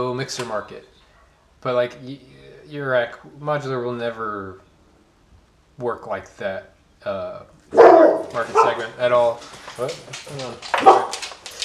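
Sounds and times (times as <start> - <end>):
speech: 0.0 - 1.0, 1.6 - 4.6, 5.8 - 11.2
dog barking and yelping: 7.7 - 9.0, 10.7 - 11.3.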